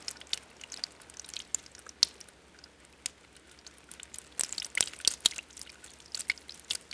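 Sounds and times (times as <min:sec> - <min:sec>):
waterfall trickle with water splashes: 0:00.0 - 0:06.9.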